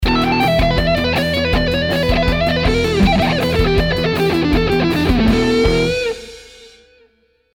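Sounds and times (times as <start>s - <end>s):
hard rock speed lick: 0.0s - 6.8s.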